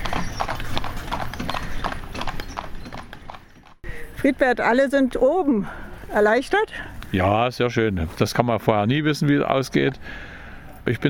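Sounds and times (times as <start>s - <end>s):
hooves clip-clopping as horses trot uphill: 0.0s - 3.8s
speech: 4.2s - 10.3s, 10.9s - 11.0s.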